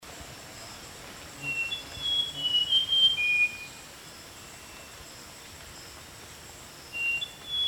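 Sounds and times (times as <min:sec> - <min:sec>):
rusty mouse-warbler song of clear thin whistled notes: 0:01.4 - 0:03.8, 0:06.9 - 0:07.6.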